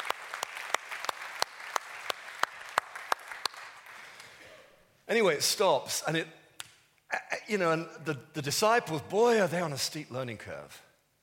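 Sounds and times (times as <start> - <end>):
audience applause: 0.0 - 4.4
sharp evenly spaced claps: 0.0 - 4.4
speech: 5.1 - 6.4, 7.4 - 10.9.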